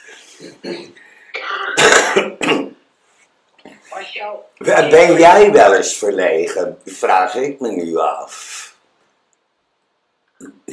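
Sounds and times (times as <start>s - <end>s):
throat clearing: 0.2s - 2.7s
speech: 0.4s - 1.0s, 4.2s - 8.6s
harsh coughing: 0.4s - 2.8s
laughter: 4.6s - 8.0s.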